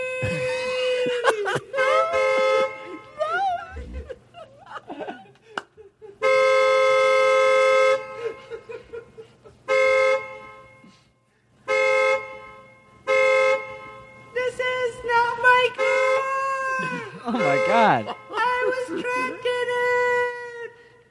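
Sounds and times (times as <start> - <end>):
laughter: 0.2 - 6.3, 8.0 - 9.7, 16.7 - 19.8
car horn honking in long loud blasts and quicker toots: 1.5 - 3.4, 6.2 - 20.4.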